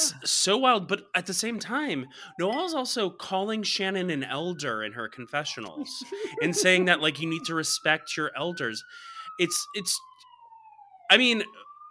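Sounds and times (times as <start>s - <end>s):
police siren wailing: 0.0s - 11.9s
speech: 0.2s - 10.2s, 11.1s - 11.6s
laughter: 5.8s - 7.4s.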